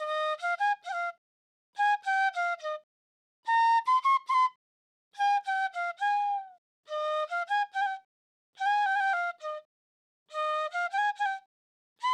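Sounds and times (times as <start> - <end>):
trap flute melody in G major: 0.0 - 1.2, 3.5 - 4.6, 5.2 - 9.7, 10.3 - 12.1.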